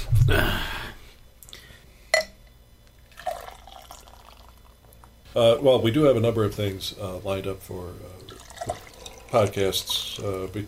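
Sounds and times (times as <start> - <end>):
glass clink: 2.1 - 2.4
beer pouring into a glass: 3.0 - 5.1, 8.2 - 10.6
speech: 5.4 - 8.4, 9.3 - 10.6.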